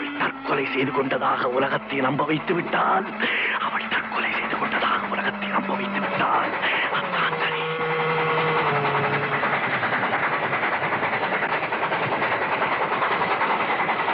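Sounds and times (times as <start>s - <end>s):
long low horn-like train tone: 0.0s - 9.8s
approaching train roar and rumble: 0.0s - 14.1s
wheels rattling on track: 0.0s - 14.1s
speech: 0.6s - 4.0s.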